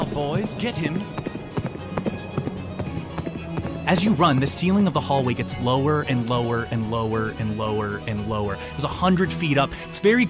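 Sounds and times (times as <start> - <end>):
running footsteps: 0.0 - 6.7
horse hooves clattering: 0.0 - 10.2
speech: 0.2 - 1.3, 3.9 - 10.2.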